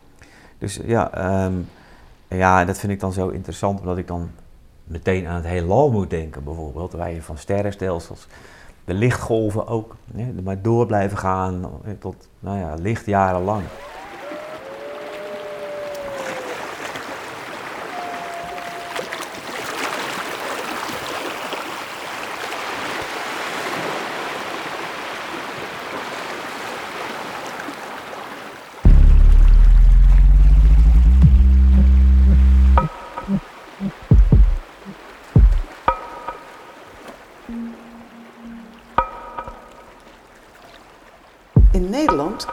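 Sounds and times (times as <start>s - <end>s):
speech: 0.6s - 13.9s
sea water splashing and lapping against a dike: 13.4s - 29.3s, 31.7s - 42.5s
deep droning tone: 28.9s - 34.0s
scattered sharp knocks: 32.8s - 34.6s, 35.4s - 36.6s, 39.0s - 39.9s.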